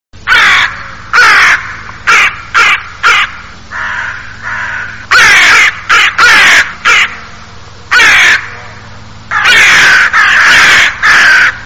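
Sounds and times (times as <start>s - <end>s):
crow: 0.3s - 7.2s, 9.3s - 11.6s.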